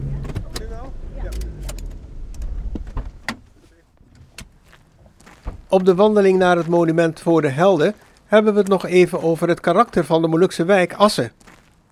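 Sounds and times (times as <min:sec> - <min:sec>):
clicks and clunks of car doors and handling: 0:00.0 - 0:05.8
speech: 0:05.7 - 0:11.5.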